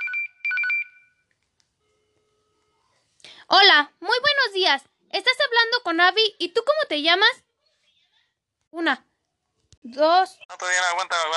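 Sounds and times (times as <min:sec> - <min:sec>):
electronic telephone ringtone signalling an incoming call: 0:00.0 - 0:01.2
speech: 0:03.5 - 0:07.4, 0:08.7 - 0:09.1, 0:09.8 - 0:11.3.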